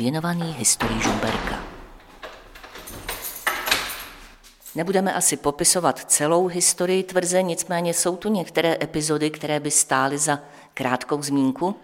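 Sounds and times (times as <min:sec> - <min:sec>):
speech: 0:00.0 - 0:01.7, 0:04.8 - 0:11.8
door being opened with clunks, rattles and a metallic latch click: 0:00.0 - 0:04.6.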